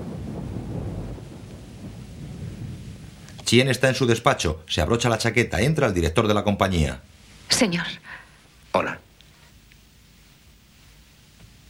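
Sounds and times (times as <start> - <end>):
deep rumbling thunder of an approaching storm: 0.0 - 5.9
speech: 3.5 - 9.0.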